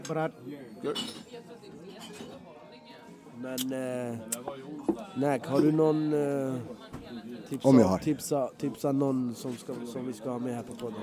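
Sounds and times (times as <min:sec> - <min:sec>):
murmur of voices talking: 0:00.0 - 0:11.0
speech: 0:00.1 - 0:02.3, 0:03.4 - 0:11.0
glasses clinking in a toast: 0:00.8 - 0:01.4.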